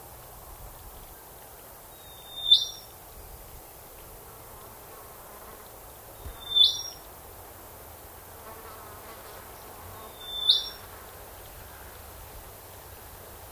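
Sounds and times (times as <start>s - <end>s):
unidentified bird species calling in a swamp: 2.0s - 2.9s, 6.2s - 7.0s, 10.1s - 10.8s.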